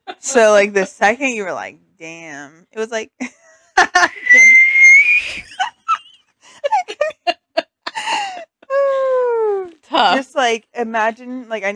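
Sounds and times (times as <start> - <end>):
speech: 0.2 - 4.7, 8.1 - 11.7
voice imitating a whistling tea kettle of boiling water: 4.1 - 5.5
laughter: 5.4 - 8.4.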